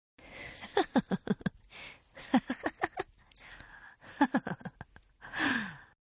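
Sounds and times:
woman giggling: 0.6s - 1.6s, 2.2s - 3.1s, 4.0s - 5.0s.

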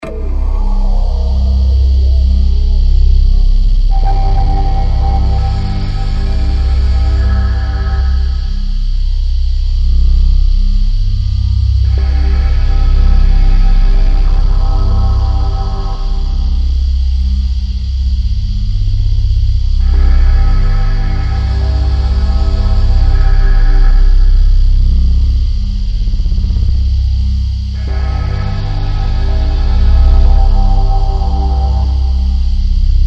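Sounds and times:
drone: 0.0s - 33.0s.

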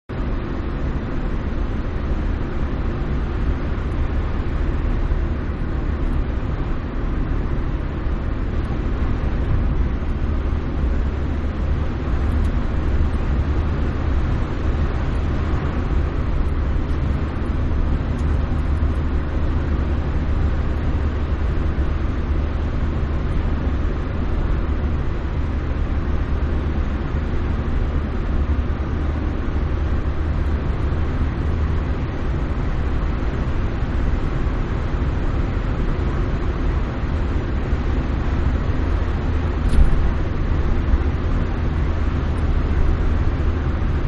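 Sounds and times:
small car driving at 55mph heard from the interior: 0.1s - 44.0s.

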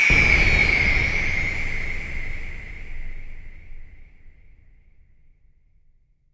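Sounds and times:
futuristic UFO spaceship crashing: 0.1s - 5.0s.

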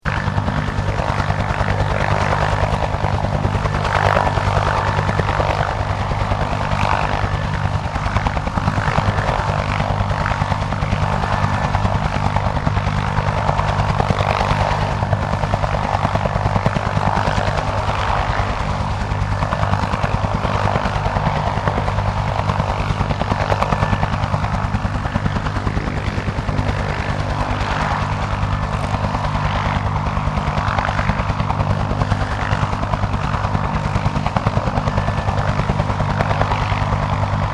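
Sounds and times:
1967 Bell UH-1 Iroquois helicopter hovering: 0.0s - 37.5s.

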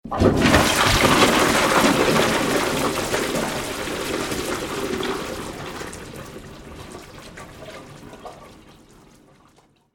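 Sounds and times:
bathroom toilet flushing water: 0.0s - 9.8s.

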